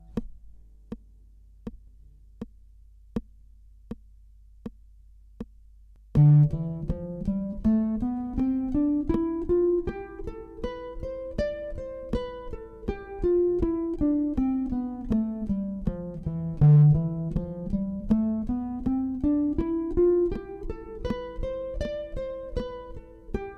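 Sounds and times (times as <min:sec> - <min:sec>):
guitar playing a Dorian scale in eighth notes: 0:06.1 - 0:23.5.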